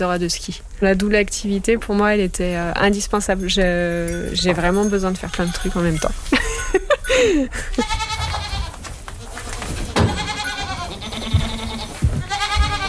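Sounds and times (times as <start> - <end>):
speech: 0.0 - 8.2
Alpine goats bleating: 7.6 - 12.8.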